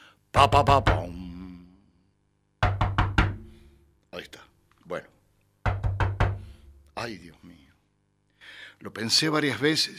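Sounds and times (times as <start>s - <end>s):
speech: 0.4s - 1.2s, 4.2s - 5.1s, 7.0s - 7.6s, 8.8s - 9.9s
loud firm knocks on a door: 0.6s - 1.2s, 2.6s - 3.6s, 5.6s - 6.6s.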